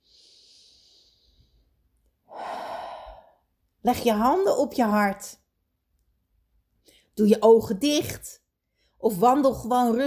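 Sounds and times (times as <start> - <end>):
slow breathing during a calm breathing exercise: 0.0 - 3.6
speech: 3.8 - 5.4, 7.2 - 8.4, 9.0 - 10.0.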